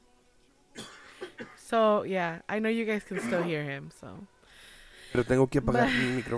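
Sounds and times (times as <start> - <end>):
sick person coughing: 0.8 - 1.6, 3.2 - 3.5
speech: 1.7 - 4.4, 5.1 - 6.3.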